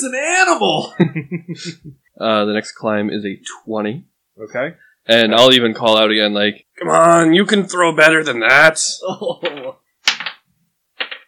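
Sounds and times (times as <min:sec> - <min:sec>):
speech: 0:00.0 - 0:09.8
dice clattering across a hard tabletop: 0:09.6 - 0:11.2.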